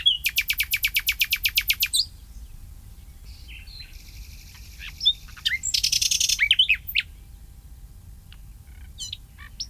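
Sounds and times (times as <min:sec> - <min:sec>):
common nightingale singing: 0:00.0 - 0:07.3, 0:08.3 - 0:09.6.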